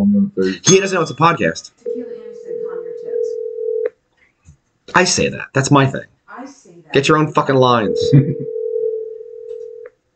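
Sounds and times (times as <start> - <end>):
voices chattering: 0.0 - 3.4, 7.8 - 8.5
speech: 0.4 - 1.8, 4.9 - 8.5
phone ringback tone: 1.9 - 3.9, 7.8 - 9.8.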